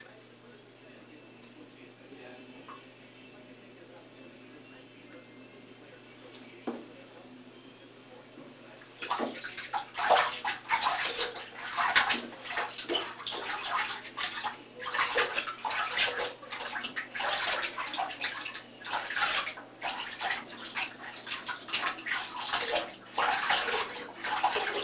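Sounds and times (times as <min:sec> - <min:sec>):
sink: 0:09.0 - 0:24.8.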